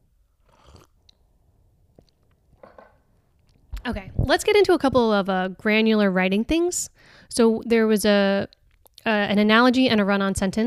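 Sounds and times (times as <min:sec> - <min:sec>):
slurping sips of coffee: 0:00.4 - 0:01.2
soft swallowing: 0:00.4 - 0:01.3
speech: 0:03.9 - 0:10.6.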